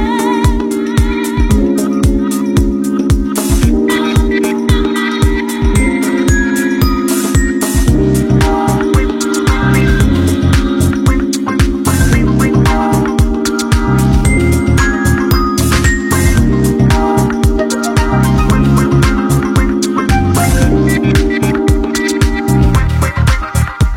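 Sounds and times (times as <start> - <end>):
Nokia phone ringtone: 0.2 - 23.8.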